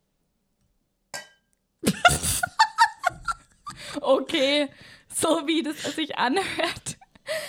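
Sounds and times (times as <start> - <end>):
glass struck to ring in a special moment: 1.1 - 1.6
laughter: 1.8 - 4.3
speech: 4.0 - 6.9.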